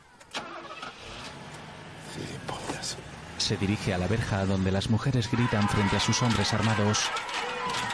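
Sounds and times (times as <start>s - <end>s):
car engine starting: 0.2s - 6.4s
speech: 2.2s - 7.8s.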